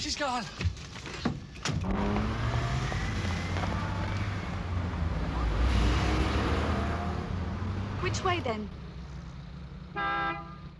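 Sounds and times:
speech: 0:00.0 - 0:01.2, 0:08.0 - 0:08.8
street noise: 0:00.0 - 0:10.7
low rumbling engine: 0:00.7 - 0:10.7
car horn honk: 0:09.9 - 0:10.7.

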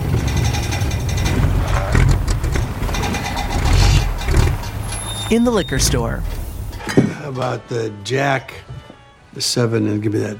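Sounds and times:
road noise: 0:00.0 - 0:06.9
smoking car engine running as the car pulls over and stops: 0:00.0 - 0:06.9
speech: 0:05.3 - 0:08.7, 0:09.4 - 0:10.3.

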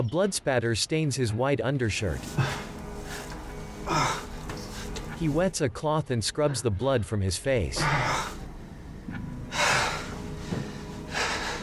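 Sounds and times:
speech: 0:00.0 - 0:02.6, 0:05.2 - 0:08.2
man breathing heavily hunched over a bathroom sink: 0:02.2 - 0:05.2, 0:07.8 - 0:08.5, 0:09.4 - 0:11.6.

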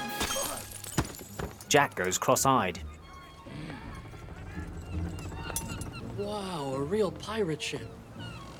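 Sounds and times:
glass rum bottle smashed on a man's head at a dockside: 0:00.1 - 0:01.8
speech: 0:01.7 - 0:02.9, 0:06.2 - 0:08.0.

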